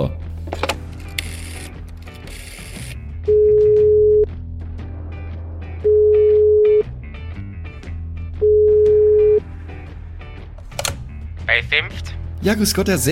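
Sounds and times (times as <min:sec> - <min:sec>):
speech: 0:00.0 - 0:00.3, 0:11.7 - 0:13.1
telephone ringback tones while placing a call: 0:03.3 - 0:04.3, 0:05.9 - 0:06.8, 0:08.4 - 0:09.4.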